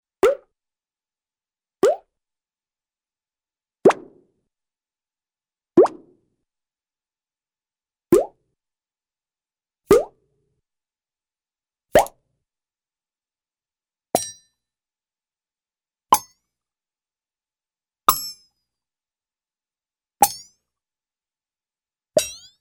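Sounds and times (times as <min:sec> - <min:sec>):
cartoon bubble pop: 0:00.2 - 0:00.5, 0:01.8 - 0:02.1, 0:03.9 - 0:04.2, 0:05.8 - 0:06.1, 0:08.2 - 0:08.4, 0:09.9 - 0:10.1.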